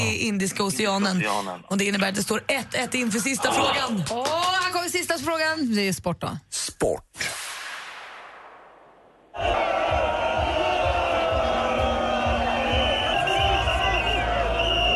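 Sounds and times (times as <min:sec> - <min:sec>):
speech: 0:00.1 - 0:07.4
large crowd cheering and shouting, welcoming home winning team: 0:09.3 - 0:14.9
whistles: 0:12.6 - 0:14.9.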